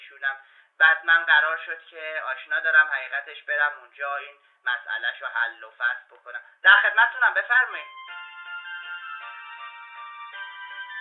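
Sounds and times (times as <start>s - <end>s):
speech: 0.2s - 8.0s
mobile phone ringtone for an incoming call: 7.8s - 10.9s.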